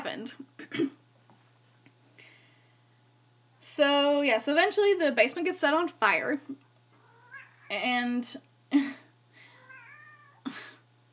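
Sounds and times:
speech: 0.2 - 1.0, 3.8 - 6.7, 7.7 - 9.0
house cat meowing for attention: 7.0 - 7.7, 9.6 - 10.4.

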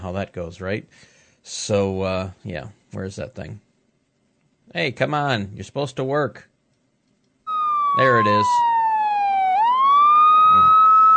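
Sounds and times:
speech: 0.0 - 3.6, 4.7 - 6.5, 7.9 - 8.8
siren sound effect wailing: 7.5 - 11.1.

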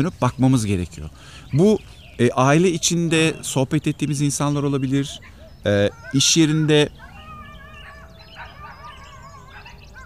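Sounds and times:
speech: 0.0 - 7.1
steady outdoor noise: 0.0 - 10.0
cats yowling and screeching in a garden cat fight: 5.0 - 10.0.

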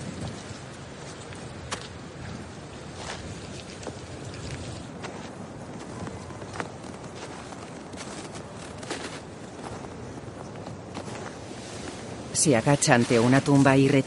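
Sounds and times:
footsteps crunching in snow walking through a snowy cemetery in winter: 2.9 - 14.0
speech: 12.4 - 14.0.

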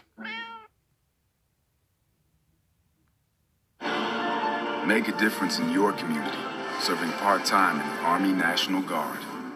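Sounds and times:
cat meowing: 0.2 - 0.7
speech: 4.9 - 9.3.

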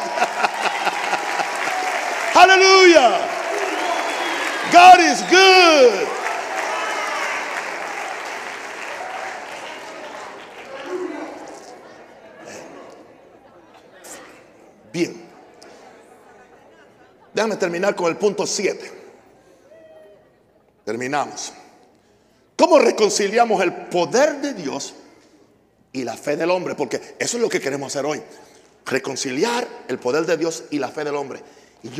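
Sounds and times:
laughter: 0.0 - 2.0, 9.8 - 14.2, 15.7 - 17.8
loud cheering voices and whoops: 0.0 - 11.4
crowd applauding: 0.0 - 12.7
speech: 2.4 - 3.3, 4.7 - 6.1, 15.0 - 15.2, 17.4 - 19.0, 20.9 - 21.6, 22.6 - 25.0, 26.0 - 31.9.

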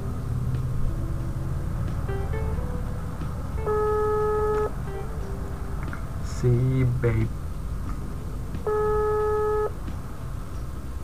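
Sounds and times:
low rumbling background: 0.0 - 11.0
steady phone call tone of an unanswered call: 3.6 - 4.8, 8.7 - 9.8
speech: 6.4 - 7.4.

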